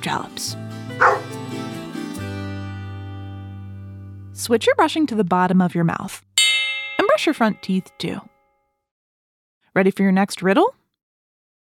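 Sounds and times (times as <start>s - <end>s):
speech: 0.0s - 1.1s, 4.4s - 6.3s, 7.2s - 8.3s, 9.8s - 10.8s
dog barking: 1.0s - 1.4s
sustained tone: 6.4s - 8.3s.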